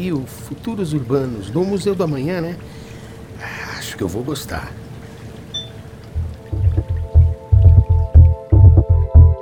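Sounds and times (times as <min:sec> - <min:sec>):
speech: 0:00.0 - 0:02.8, 0:03.4 - 0:04.8
running water splashing and dripping into a sink while washing dishes: 0:05.6 - 0:09.3.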